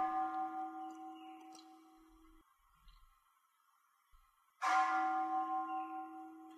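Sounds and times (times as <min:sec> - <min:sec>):
resonant bell ringing: 0:00.0 - 0:02.2, 0:04.6 - 0:06.5.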